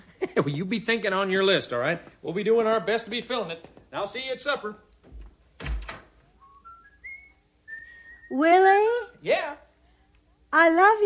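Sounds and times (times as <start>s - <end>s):
speech: 0.4s - 4.8s, 8.3s - 9.6s, 10.5s - 11.0s
loud thump: 5.1s - 6.1s
person whistling a short rising tune: 6.4s - 8.4s.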